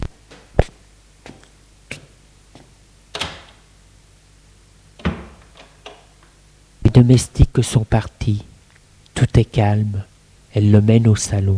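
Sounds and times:
villa front door being opened: 3.1s - 3.6s, 5.0s - 6.2s
speech: 6.9s - 8.5s, 9.2s - 11.5s.

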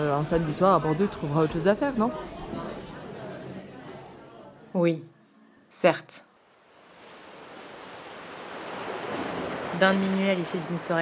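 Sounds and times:
speech: 0.0s - 2.7s, 4.7s - 5.1s, 5.7s - 6.3s, 9.8s - 10.9s
ocean surf washing in: 6.5s - 10.9s
ocean wave breaking and rushing up the shore: 6.6s - 10.9s.

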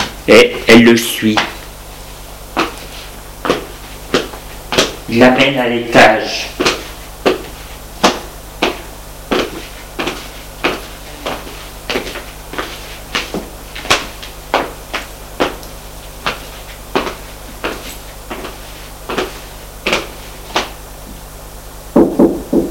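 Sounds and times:
faint hum: 0.0s - 22.6s
speech: 0.3s - 1.5s, 5.1s - 6.6s
knocking on an office door: 22.0s - 22.6s.

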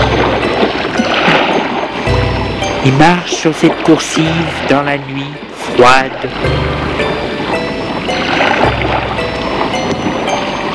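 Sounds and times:
sea waves washing: 0.0s - 10.7s
speech: 2.8s - 7.0s.

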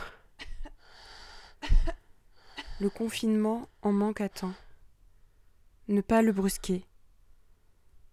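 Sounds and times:
coughing into an elbow: 0.0s - 0.8s, 1.6s - 2.0s
speech: 2.8s - 4.6s, 5.9s - 6.9s.

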